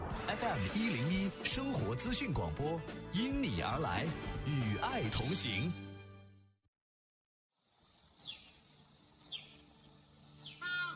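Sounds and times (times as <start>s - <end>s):
speech: 0.3s - 5.8s
crested ibis calling in the Qinling Mountains of China: 9.2s - 10.9s.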